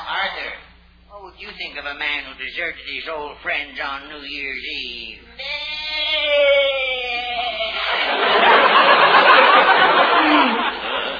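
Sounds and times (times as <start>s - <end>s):
speech: 1.3s - 6.8s
goat bleating: 5.4s - 7.8s
laughter: 7.0s - 11.1s.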